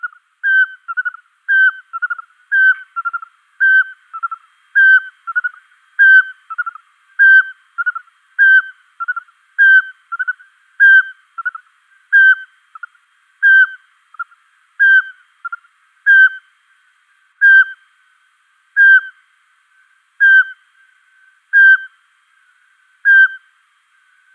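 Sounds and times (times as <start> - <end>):
Eurasian pygmy owl male giving whistled display notes: 0.0 - 16.5, 17.4 - 17.8, 18.8 - 19.2, 20.2 - 20.6, 21.5 - 22.0, 23.0 - 23.5.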